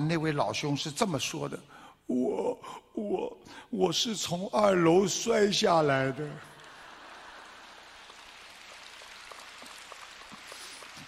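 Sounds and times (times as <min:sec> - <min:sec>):
speech: 0:00.1 - 0:06.5
steady hiss: 0:05.0 - 0:11.0
faint thin applause from an audience: 0:06.4 - 0:11.0.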